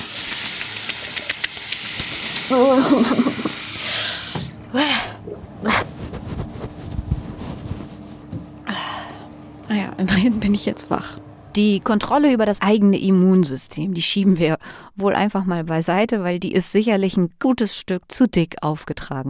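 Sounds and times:
water pouring: 0.0s - 4.6s
speech: 2.5s - 3.4s, 10.0s - 19.2s
laughter: 2.6s - 3.6s
short breathy gasps: 3.8s - 5.2s, 8.6s - 9.3s, 14.6s - 14.9s.

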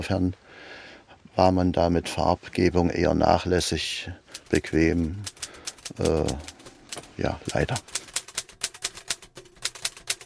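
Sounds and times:
speech: 0.0s - 0.8s, 1.4s - 6.5s, 7.2s - 8.0s
East German typewriter keys clacking: 4.3s - 10.2s.

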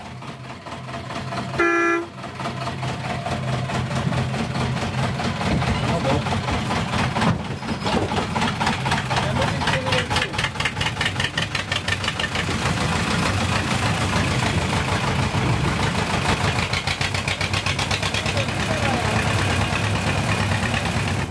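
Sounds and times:
small narrow-gauge diesel locomotive rumbling and clattering pulling away: 0.0s - 21.2s
small diesel locomotive horn toot: 1.6s - 2.2s.

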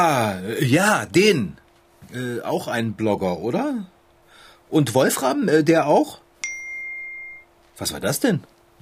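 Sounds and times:
speech: 0.0s - 3.9s, 4.7s - 6.2s, 7.8s - 8.5s
faint steady low hum: 0.0s - 8.8s
bright electronic phone notification ding: 6.4s - 7.5s.

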